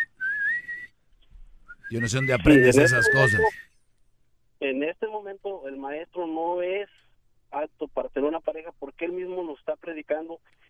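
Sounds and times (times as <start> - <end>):
person whistling a single sustained slightly rising tone: 0.0 - 1.0, 1.6 - 3.8
speech: 1.9 - 3.7, 4.7 - 10.6.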